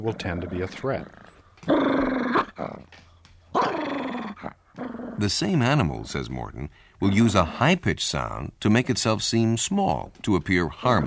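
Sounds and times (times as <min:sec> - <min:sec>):
speech: 0:00.0 - 0:02.1, 0:05.2 - 0:11.0
dog barking at a person coming up the walk: 0:03.6 - 0:04.5.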